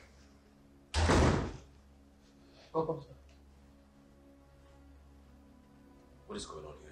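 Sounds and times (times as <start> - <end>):
gate slamming shut: 0.9 - 1.6
speech: 2.8 - 3.3, 6.3 - 6.8.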